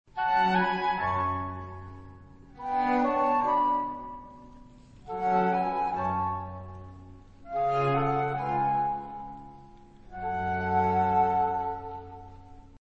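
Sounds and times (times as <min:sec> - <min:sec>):
American baroque music in G: 0:00.1 - 0:12.8.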